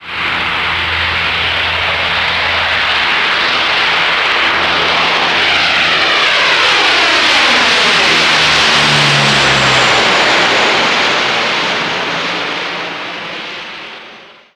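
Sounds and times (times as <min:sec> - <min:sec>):
Lockheed Electra propeller airplane: 0:00.0 - 0:14.5.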